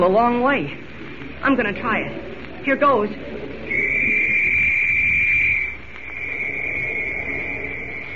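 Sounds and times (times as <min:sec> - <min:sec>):
speech: 0:00.0 - 0:00.8, 0:01.4 - 0:03.4
noise: 0:00.0 - 0:08.1
police whistle blown loudly: 0:03.7 - 0:08.1.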